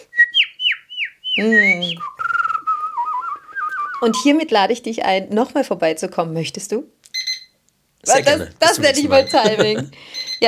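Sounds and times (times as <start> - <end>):
person whistling a short lively tune: 0.0 - 0.5, 1.3 - 4.3
speech: 1.4 - 2.1, 4.0 - 7.0, 8.0 - 10.4
laughter: 8.1 - 10.0.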